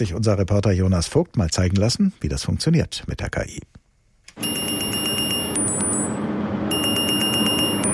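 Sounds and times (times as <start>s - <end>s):
speech: 0.0s - 3.8s
lifeguard's wristwatch alarm at outdoor swimming pool beeping, set off by AI system: 4.4s - 7.9s.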